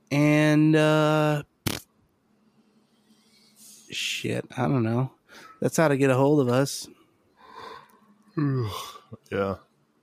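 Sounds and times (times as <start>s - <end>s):
speech: 0.6s - 1.5s, 3.9s - 7.0s, 8.4s - 9.7s
vocalized sigh: 7.4s - 9.2s
person yawning: 8.4s - 9.1s.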